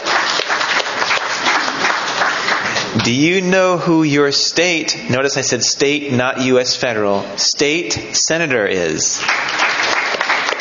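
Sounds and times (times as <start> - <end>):
audience clapping hands: 0.0 - 3.0, 9.2 - 10.5
speech: 3.0 - 9.7.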